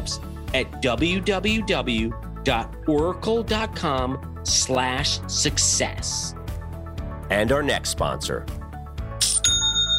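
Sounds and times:
speech: 0.1s - 6.4s, 7.3s - 8.6s
online store sale notification chime: 9.2s - 9.9s.

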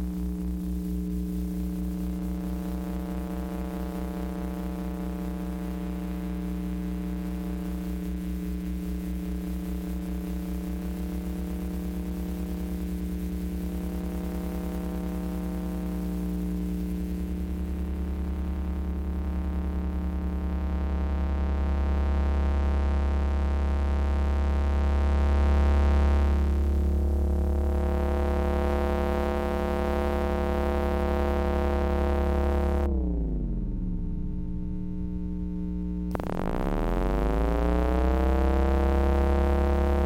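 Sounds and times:
electromagnetic hum from household electronics: 0.0s - 40.0s
deep electromagnetic throb: 25.9s - 40.0s.

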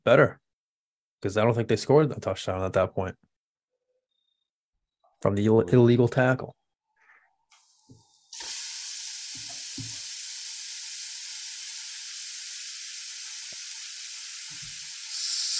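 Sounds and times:
speech: 0.0s - 0.4s, 1.2s - 3.3s, 5.2s - 6.6s
food frying with a dense sizzle: 7.5s - 15.5s.

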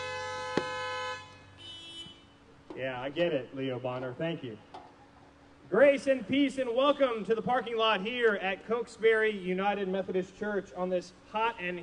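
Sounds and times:
car horns honking: 0.0s - 2.5s, 6.6s - 7.4s
speech: 2.8s - 4.7s, 5.7s - 11.8s.

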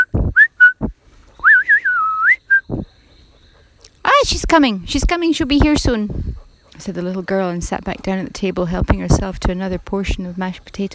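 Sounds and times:
answering whistle: 0.0s - 2.8s
speech: 4.5s - 10.9s.

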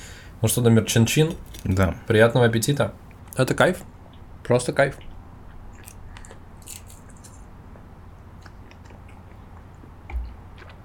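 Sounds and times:
speech: 0.4s - 3.9s, 4.5s - 5.1s
person biting and chewing hot sausages baked in dough: 5.0s - 7.5s, 8.3s - 10.8s.

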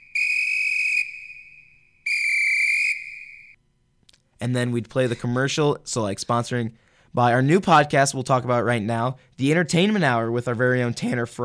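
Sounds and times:
shrill referee whistle blasts for a timeout: 0.0s - 3.6s
speech: 4.4s - 11.4s.

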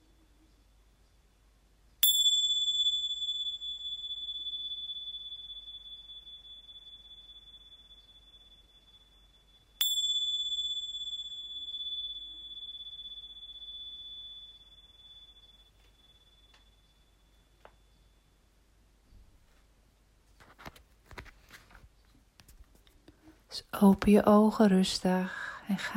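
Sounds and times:
small bell ringing with a long shimmering ring: 2.0s - 18.3s
speech: 23.6s - 25.9s.

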